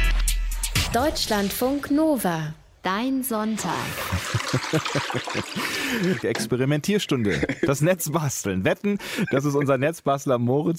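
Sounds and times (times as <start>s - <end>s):
speech: 0.9s - 10.7s
water glugs and drips: 3.7s - 6.4s
laughter: 3.8s - 7.9s, 9.0s - 9.8s
toilet cistern water trickling and gurgling through spout bottle: 3.9s - 6.3s.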